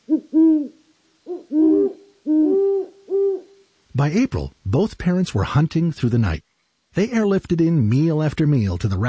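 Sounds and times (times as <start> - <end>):
great horned owl hooting: 0.0 - 3.8
speech: 4.0 - 9.0.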